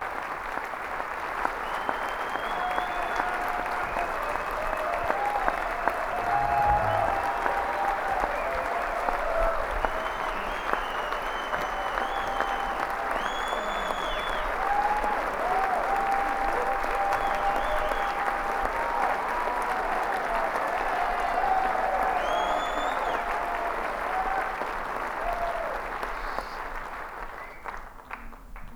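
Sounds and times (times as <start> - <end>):
encore applause at a bluegrass show: 0.0 - 28.7.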